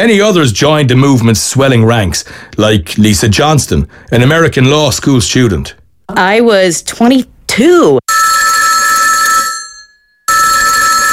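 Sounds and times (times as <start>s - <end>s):
speech: 0.0s - 8.2s
jangling telephone bell ringing: 8.1s - 11.1s.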